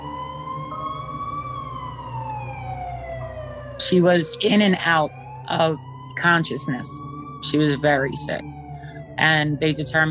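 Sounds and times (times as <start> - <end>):
ambulance siren wailing: 0.0 - 10.0
speech: 3.8 - 8.5, 9.2 - 10.0.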